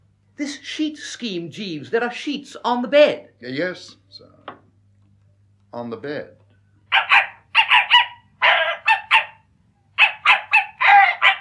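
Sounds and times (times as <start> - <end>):
speech: 0.4 - 4.4, 5.7 - 6.4
small dog barking in high-pitched yaps: 6.9 - 11.3.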